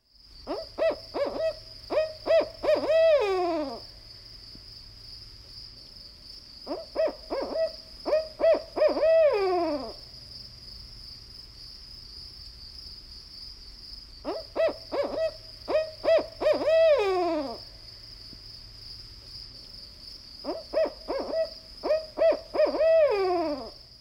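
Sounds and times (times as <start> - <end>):
faint high-pitched whine: 0.0 - 23.9
barred owl calling a rhythmic series of hoots: 0.4 - 3.9, 6.7 - 10.0, 14.2 - 17.6, 20.4 - 23.8.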